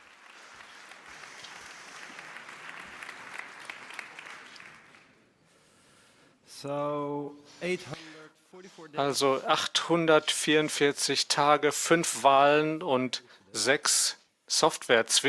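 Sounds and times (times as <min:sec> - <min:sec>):
audience applauding: 0:00.0 - 0:05.3
speech: 0:06.6 - 0:08.0, 0:08.7 - 0:15.2.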